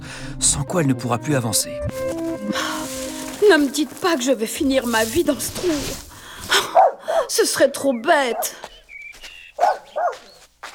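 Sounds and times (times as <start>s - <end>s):
speech: 0.4s - 2.1s, 3.5s - 6.1s, 7.3s - 8.7s
dog barking short and sharp: 6.7s - 7.3s, 9.6s - 10.4s.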